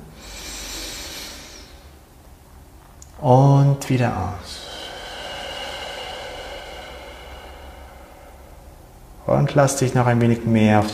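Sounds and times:
deep inhale through the nose during a guided meditation: 0.0s - 2.1s, 4.4s - 9.2s
speech: 3.2s - 4.6s, 9.4s - 10.9s.

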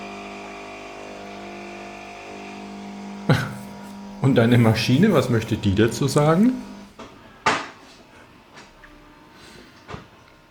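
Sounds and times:
quiet coffee machine hum: 0.0s - 7.1s
speech: 3.3s - 3.5s, 4.2s - 6.7s.

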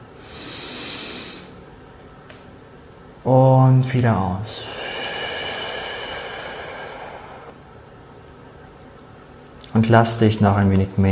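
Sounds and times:
deep airy inhale during a guided group meditation: 0.1s - 1.6s, 4.5s - 7.8s
speech: 3.2s - 4.8s, 9.8s - 11.1s.

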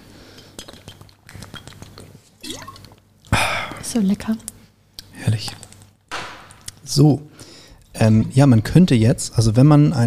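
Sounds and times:
bright clink of glass: 2.4s - 2.9s
water pouring from a bottle into a glass: 2.4s - 2.9s
speech: 3.9s - 4.5s, 5.2s - 5.6s, 6.9s - 7.3s, 8.0s - 10.0s.

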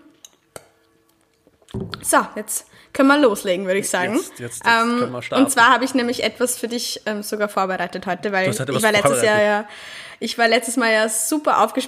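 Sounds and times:
speech: 1.8s - 11.8s
two glasses of vodka and soda clinking in a toast: 8.5s - 9.4s.

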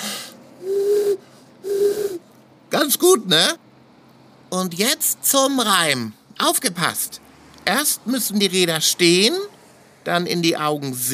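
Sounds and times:
person imitating eagle owl hoots: 0.0s - 2.3s
speech: 2.9s - 3.6s, 4.5s - 11.1s.

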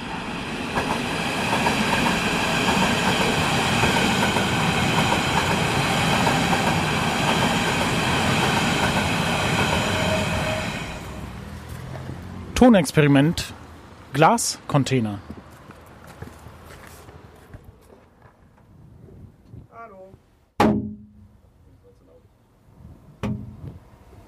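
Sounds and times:
S-Bahn commuter train passing on rails: 0.0s - 17.4s
thin high metallic whine of S-Bahn commuter train: 7.0s - 11.3s
speech: 12.6s - 13.6s, 14.2s - 15.3s.

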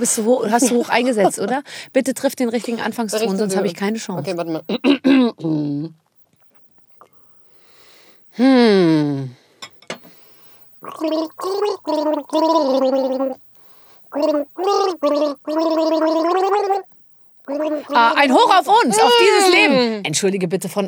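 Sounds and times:
speech: 0.0s - 6.0s, 8.4s - 10.0s, 10.8s - 13.4s, 14.1s - 16.9s, 17.5s - 20.8s
person gargling a tune: 10.8s - 13.4s, 14.1s - 16.9s, 17.5s - 18.4s.

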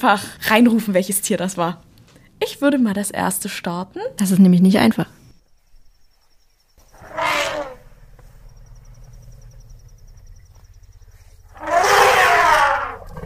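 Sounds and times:
speech: 0.0s - 5.2s
elephant deep low rumbling contact call: 6.8s - 13.2s.

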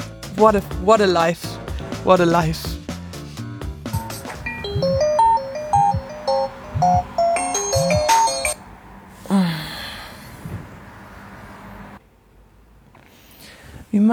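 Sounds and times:
speech: 0.4s - 2.8s
electronic alarm clock melody: 3.9s - 8.6s
person groaning sleepily: 9.2s - 10.2s.

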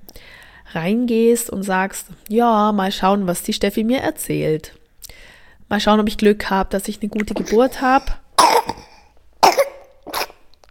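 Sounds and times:
speech: 0.7s - 4.8s, 5.7s - 8.8s
baby coughing: 7.4s - 10.4s.

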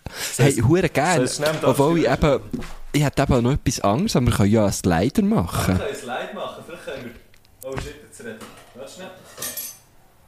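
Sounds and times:
speech: 0.4s - 9.6s
metal cutlery clinking against a soup bowl: 8.4s - 9.9s.

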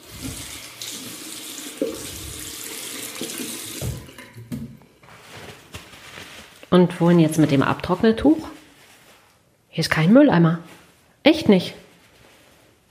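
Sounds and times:
hands being washed under a sink tap: 0.0s - 4.4s
running tap water splashing into a sink in an airport restroom: 0.0s - 4.8s
speech: 6.7s - 8.6s, 9.8s - 11.8s.

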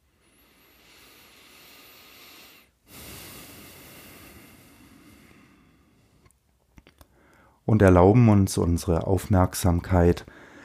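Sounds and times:
slow deliberate deep breathing in and out: 0.0s - 7.6s, 10.2s - 10.6s
speech: 7.7s - 10.4s.

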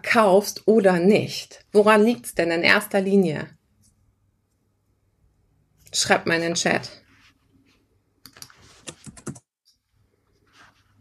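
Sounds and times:
speech: 0.0s - 3.6s, 5.9s - 7.0s
faint room noise: 0.0s - 10.9s
typing on a computer keyboard: 8.2s - 9.5s.

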